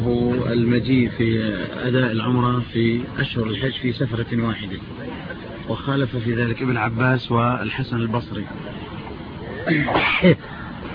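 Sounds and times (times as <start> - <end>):
speech: 0.1 - 8.8, 9.6 - 10.6
person sneezing: 9.6 - 10.4.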